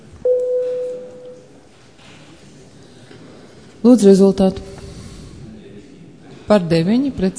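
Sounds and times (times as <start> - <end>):
parliamentary voting bell electronic tone in the Saeima: 0.2 - 1.5
low murmur of voices: 1.3 - 7.3
speech: 3.8 - 4.7, 6.5 - 7.3.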